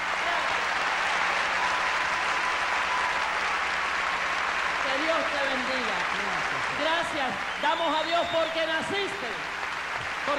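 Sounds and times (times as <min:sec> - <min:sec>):
audience applauding at a tribute event honoring a singer: 0:00.0 - 0:10.3
speech: 0:07.1 - 0:09.5.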